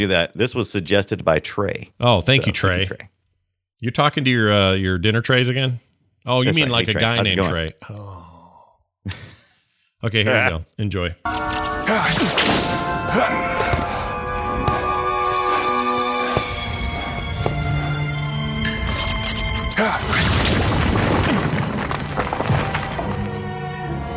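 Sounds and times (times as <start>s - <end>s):
speech: 0.0s - 3.2s, 3.8s - 8.2s, 9.0s - 9.3s, 10.0s - 13.6s
loud dramatic orchestral music: 11.3s - 20.4s, 22.0s - 24.1s
heavy whacks and crashing impacts: 12.0s - 13.0s, 19.9s - 23.2s
whip cracks: 12.2s - 12.9s.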